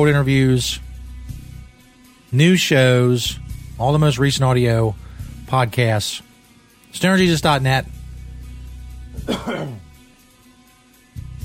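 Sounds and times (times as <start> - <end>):
speech: 0.0 - 0.9, 2.3 - 6.3, 6.9 - 8.0, 9.2 - 9.8
person coughing: 9.2 - 10.0.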